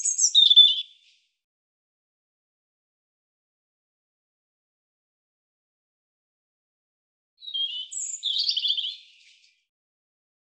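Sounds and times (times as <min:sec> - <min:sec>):
European robin singing: 0:00.0 - 0:01.1, 0:07.4 - 0:09.6.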